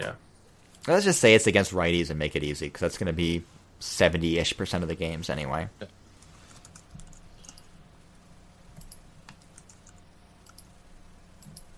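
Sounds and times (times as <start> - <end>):
speech: 0.0 - 6.0
low steady hum: 0.0 - 11.7
typing on a computer keyboard: 6.6 - 7.7, 8.8 - 10.7.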